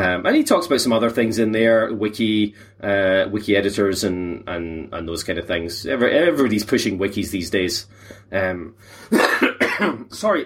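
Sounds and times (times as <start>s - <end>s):
speech: 0.2s - 10.4s
man coughing: 9.0s - 10.3s
man clearing his throat: 9.1s - 10.2s.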